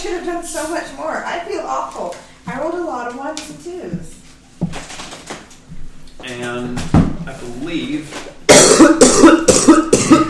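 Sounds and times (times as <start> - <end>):
speech: 0.0 - 4.8, 6.2 - 10.2
person coughing: 8.5 - 10.2.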